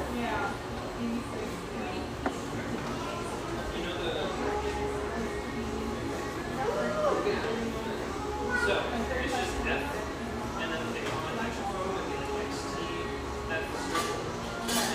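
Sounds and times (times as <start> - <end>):
many people conversing in a coffeeshop: 0.0 - 14.9
cups, dishes and cutlery clinking: 13.8 - 14.9.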